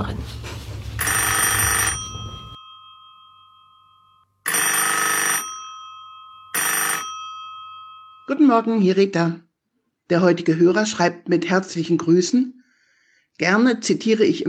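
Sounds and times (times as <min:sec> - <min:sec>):
speech: 0:00.0 - 0:00.4, 0:08.3 - 0:09.5, 0:10.1 - 0:12.6, 0:13.4 - 0:14.4
telephone bell ringing for an incoming call: 0:01.0 - 0:08.6.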